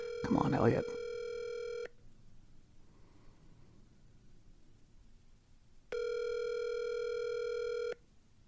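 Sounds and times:
ringback tone of an outgoing phone call: 0:00.0 - 0:01.9, 0:05.9 - 0:08.0
speech: 0:00.3 - 0:01.0.

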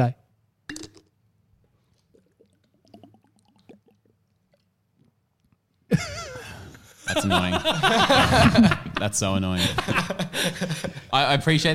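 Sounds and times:
speech: 0:00.0 - 0:00.2, 0:07.1 - 0:11.7
person swallowing and gulping while drinking water: 0:00.7 - 0:01.2, 0:01.8 - 0:05.9
laughter: 0:05.9 - 0:11.1.

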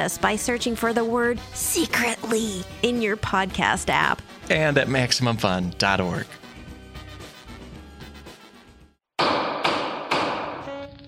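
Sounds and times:
speech: 0:00.0 - 0:06.4
heavy thumps while repairing a hover chair: 0:09.2 - 0:10.9.

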